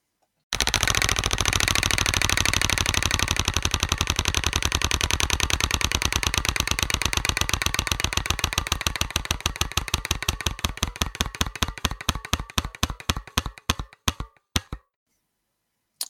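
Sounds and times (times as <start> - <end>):
roulette-style wheel spinning and clicking in a card game: 0.6 - 14.9.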